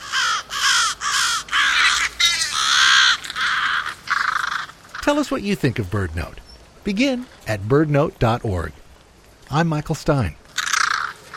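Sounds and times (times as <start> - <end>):
crows cawing: 0.0 - 5.2, 10.4 - 11.3
speech: 5.1 - 8.8, 9.5 - 10.4.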